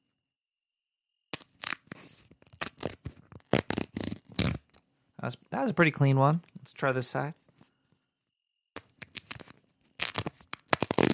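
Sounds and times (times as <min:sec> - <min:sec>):
something being ripped apart: 0:01.3 - 0:04.8, 0:08.8 - 0:11.1
speech: 0:05.2 - 0:07.4.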